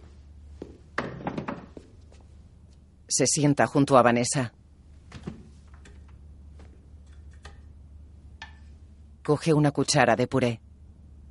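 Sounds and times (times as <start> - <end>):
wooden chair knocking and scraping on the floor: 0.6 - 2.0, 5.1 - 7.4
wooden chair set down on the floor: 1.0 - 1.9
speech: 3.1 - 4.6, 9.3 - 10.6.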